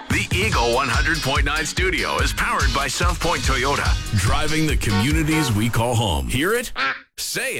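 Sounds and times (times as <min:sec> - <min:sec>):
speech: 0:00.4 - 0:07.5
duck quacking: 0:04.2 - 0:05.6, 0:06.7 - 0:07.1.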